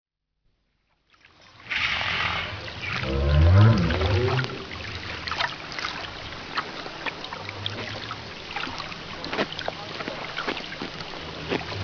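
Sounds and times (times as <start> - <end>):
broad water noise: 0.9 - 11.8
North Atlantic right whale giving a low tonal call: 1.7 - 4.8.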